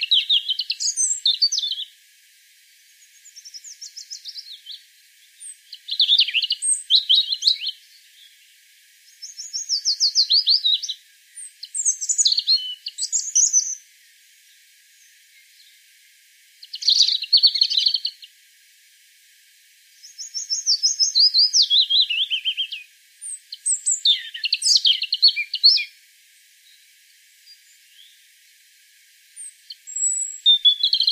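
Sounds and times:
European robin Erithacus rubecula singing: 0.0s - 2.0s, 3.0s - 14.2s, 16.6s - 18.3s, 20.0s - 26.0s, 27.4s - 28.2s, 29.4s - 31.1s.

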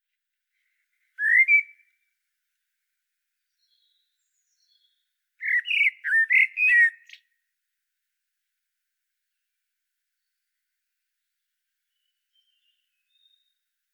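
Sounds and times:
Common blackbird Turdus merula fluted and warbled song: 0.5s - 2.1s, 3.4s - 7.4s, 10.1s - 13.8s.

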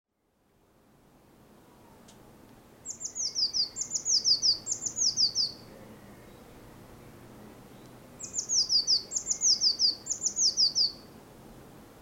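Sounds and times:
faint hiss: 0.2s - 11.9s
Eurasian blue tit Cyanistes caeruleus trilling high thin downward-slurred notes: 2.9s - 5.6s, 8.2s - 11.0s.

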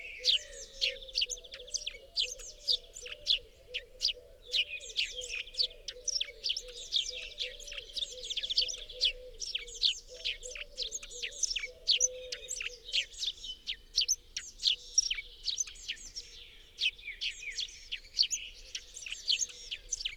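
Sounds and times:
Eurasian blue tit Cyanistes caeruleus twittering chirps: 0.0s - 20.1s.

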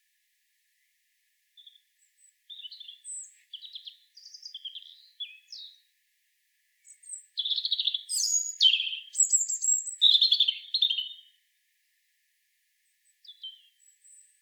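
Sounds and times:
Erithacus rubecula European robin singing: 1.6s - 5.8s, 6.8s - 11.3s, 13.2s - 14.4s.

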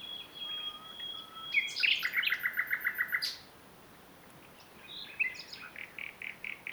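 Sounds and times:
Common nightingale song, Luscinia megarhynchos: 0.0s - 3.4s.

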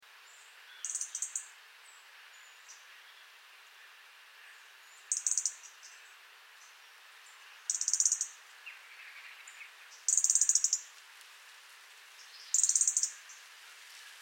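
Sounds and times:
soft background hiss: 0.0s - 14.2s
European robin Erithacus rubecula ticking calls: 0.8s - 1.5s, 5.1s - 6.0s, 7.7s - 10.9s, 12.4s - 13.3s.

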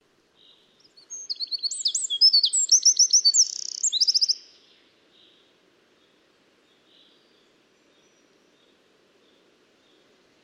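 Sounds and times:
Eurasian wren Troglodytes troglodytes singing: 0.8s - 4.5s.

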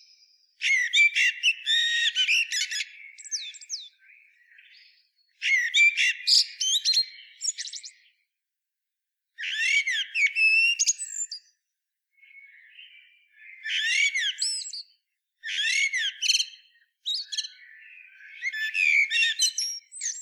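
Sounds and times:
common blackbird Turdus merula singing: 0.0s - 8.2s, 9.4s - 11.5s, 12.2s - 20.2s.

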